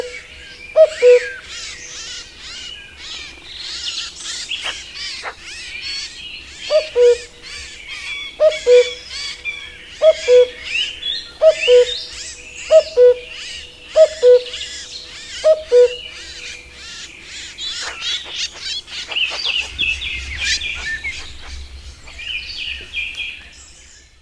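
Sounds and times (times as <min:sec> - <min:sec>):
common cuckoo giving its two-note cu-coo call: 0:00.0 - 0:23.9
busy chorus of other songbirds: 0:00.0 - 0:24.2.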